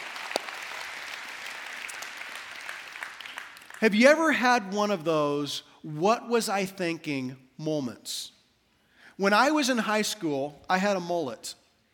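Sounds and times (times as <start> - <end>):
audience applauding: 0.0 - 3.8
speech: 3.8 - 8.4, 9.2 - 11.6.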